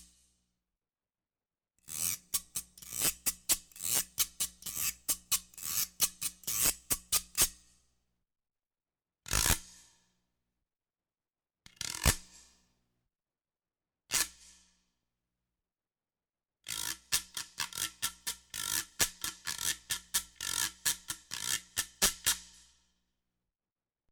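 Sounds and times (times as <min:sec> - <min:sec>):
percussion scrape accent: 0:02.0 - 0:07.6, 0:16.7 - 0:22.7.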